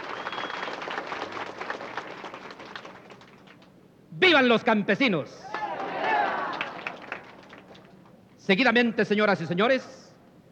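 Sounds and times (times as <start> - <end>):
crowd applauding: 0.0 - 3.7, 5.5 - 8.1
speech: 4.2 - 5.5, 8.5 - 10.0.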